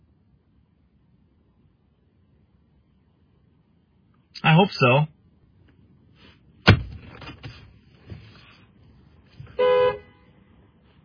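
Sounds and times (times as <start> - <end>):
speech: 4.4 - 5.2
sharp thud: 6.6 - 7.6
car horn honking to keep a dog out of the trash: 9.5 - 10.4.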